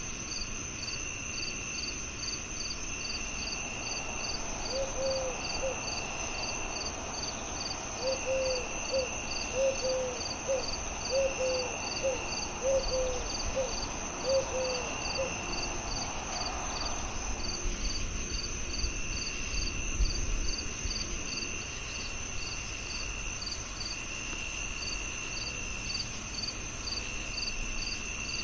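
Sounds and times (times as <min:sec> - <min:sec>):
crickets singing in a dense chorus: 0:00.0 - 0:28.4
soft short evenly spaced calls: 0:03.9 - 0:06.4, 0:07.2 - 0:15.7.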